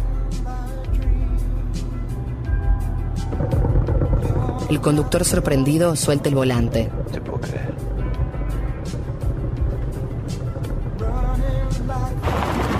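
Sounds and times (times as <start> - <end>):
car with a flat tire rumbling on a mountain road: 1.1 - 12.7
tires crunching over rough ground of a road shoulder: 2.5 - 12.7
speech: 4.7 - 7.8.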